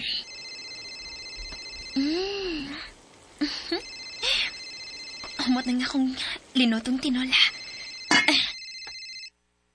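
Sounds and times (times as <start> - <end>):
cellphone ringtone electronic chime: 0.1 - 2.3, 3.8 - 5.9, 7.5 - 9.3
speech: 5.5 - 7.5.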